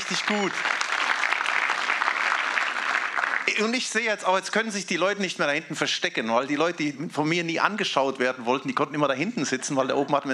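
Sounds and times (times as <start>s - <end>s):
audience applause: 0.0s - 3.9s
speech: 0.1s - 0.8s, 3.5s - 10.3s.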